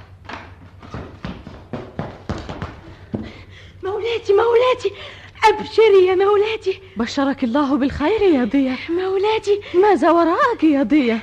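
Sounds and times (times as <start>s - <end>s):
quick hurried footsteps: 0.0s - 3.7s
speech: 3.9s - 11.2s.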